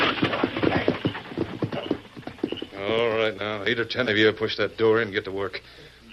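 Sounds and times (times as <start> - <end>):
horses' hooves clopping while pulling a wagon backing up to a door: 0.0 - 3.2
speech: 3.3 - 6.1.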